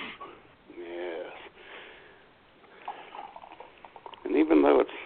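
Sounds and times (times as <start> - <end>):
Andre California Champagne being poured into a big glass: 2.7 - 4.7.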